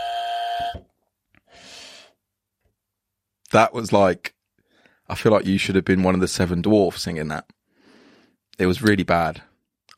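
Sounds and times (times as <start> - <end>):
loud harsh electronic buzzer: 0.0 - 0.8
speech: 3.5 - 4.4, 5.1 - 7.6, 8.6 - 9.9.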